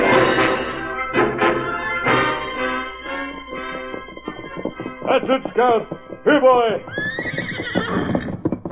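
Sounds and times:
faint clatter of hooves: 0.1s - 8.6s
speech: 5.2s - 7.0s
horse neighing: 6.8s - 8.4s.

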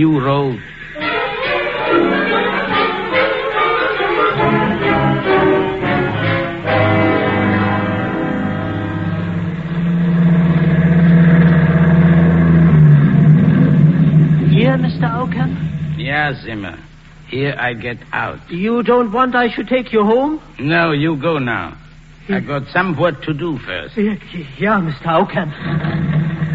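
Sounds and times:
speech: 0.0s - 0.8s, 1.9s - 2.4s, 15.0s - 26.0s
truck engine rumbling while driving: 0.0s - 17.3s, 25.4s - 26.5s.

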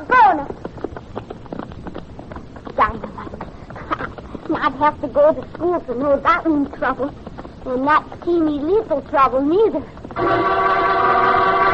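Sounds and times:
horses' hooves clattering as riders set off: 0.0s - 11.7s
noise: 0.0s - 11.7s
speech: 4.6s - 10.8s.

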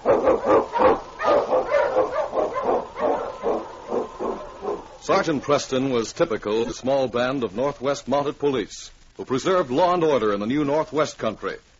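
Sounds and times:
husky sled dog barking: 0.0s - 5.0s
speech: 5.1s - 11.7s.

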